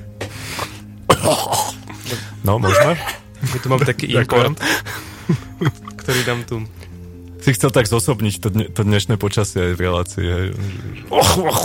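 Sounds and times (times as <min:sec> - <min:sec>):
people coughing in a room: 0:01.1 - 0:03.7, 0:10.9 - 0:11.6
speech: 0:01.3 - 0:01.6, 0:02.4 - 0:06.8, 0:07.4 - 0:11.6.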